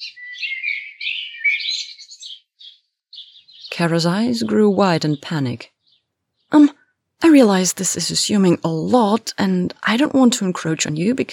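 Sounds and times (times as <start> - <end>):
small bird trilling: 0.0 - 6.6
speech: 3.8 - 5.8, 6.5 - 6.7, 7.4 - 11.3.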